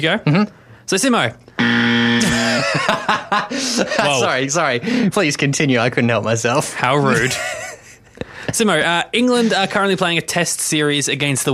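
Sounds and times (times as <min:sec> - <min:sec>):
speech: 0:00.0 - 0:02.0, 0:02.7 - 0:07.6, 0:08.5 - 0:11.5
buzzer pressed: 0:01.6 - 0:03.0
laughter: 0:02.2 - 0:04.5, 0:07.1 - 0:08.6, 0:09.2 - 0:10.0.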